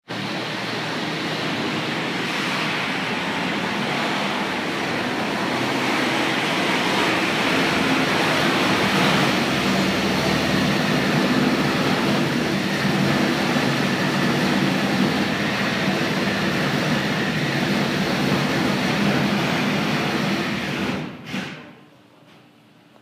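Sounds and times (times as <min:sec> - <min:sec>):
drilling on the sixth floor: 0:00.1 - 0:21.6.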